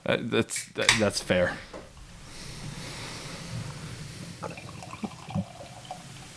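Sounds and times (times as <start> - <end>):
speech: 0.0 - 1.8
beer fizzy crackles: 2.0 - 6.3
freshly canned beer pouring into balloon glasses: 4.4 - 6.3.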